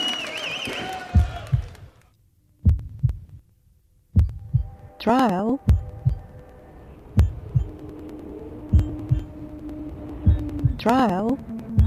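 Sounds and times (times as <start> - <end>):
heartbeat: 1.1 - 1.9, 2.6 - 3.4, 4.2 - 11.8
wavering tone: 4.3 - 11.8
speech: 5.0 - 5.7, 10.8 - 11.5.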